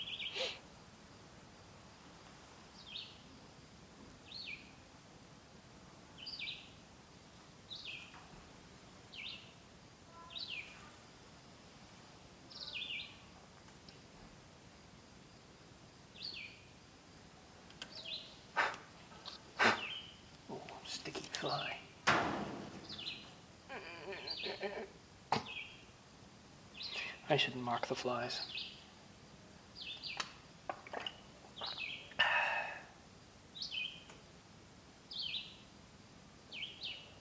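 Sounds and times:
short bright bird chirps outdoors: 0.0s - 0.6s, 6.2s - 6.8s, 7.7s - 8.2s, 9.1s - 10.9s, 12.5s - 13.3s, 17.8s - 22.0s, 22.7s - 26.0s, 26.7s - 29.0s, 29.8s - 30.3s, 30.9s - 32.8s, 33.6s - 34.2s, 35.1s - 35.7s, 36.5s - 37.1s
steady hiss of outdoor ambience: 0.0s - 37.1s
speech: 21.4s - 21.8s, 27.3s - 28.7s.

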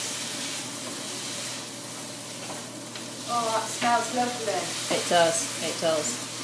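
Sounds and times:
rice sizzling in a frying pan while stirred after adding wine: 0.0s - 6.4s
speech: 3.3s - 6.3s.

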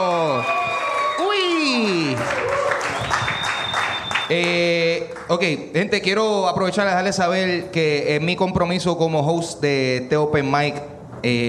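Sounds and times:
open mic audience shouts and whoops: 0.0s - 4.1s
open mic audience applause: 0.0s - 5.3s
speech: 4.3s - 11.4s.

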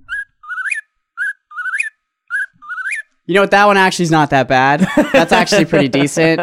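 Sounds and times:
whistled imitation of an eastern whip-poor-will call: 0.0s - 3.1s
speech: 3.3s - 6.4s
laughter: 4.8s - 6.4s.

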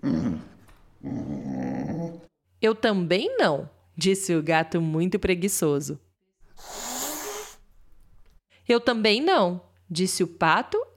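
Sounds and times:
dog growling: 0.0s - 2.3s
speech: 2.6s - 6.7s, 8.7s - 10.9s.

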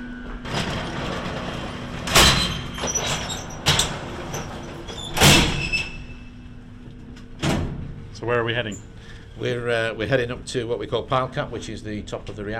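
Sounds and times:
steady low mechanical hum inside a nuclear reactor building: 0.0s - 12.5s
door into a lift opening and shutting inside a nuclear reactor building: 0.2s - 6.4s
speech: 8.2s - 12.5s.

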